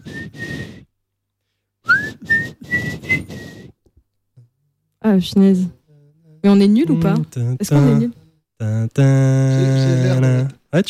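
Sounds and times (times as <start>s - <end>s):
person whistling a short tune into a microphone: 0.0s - 0.9s, 1.8s - 3.8s
speech: 5.1s - 5.8s, 6.4s - 10.8s.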